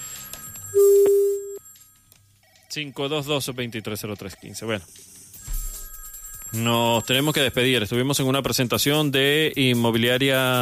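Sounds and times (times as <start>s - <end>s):
mid-pitched electronic telephone tone on a congested phone line: 0.4s - 1.7s
speech: 2.8s - 5.2s, 6.5s - 10.6s.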